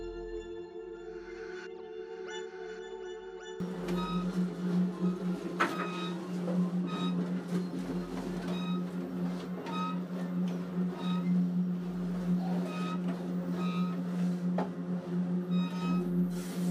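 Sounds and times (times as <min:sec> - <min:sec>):
rhythmic clicks and clanks of train on rails: 0:03.6 - 0:16.6
train rolling along the rails heard from inside a carriage: 0:03.6 - 0:16.6.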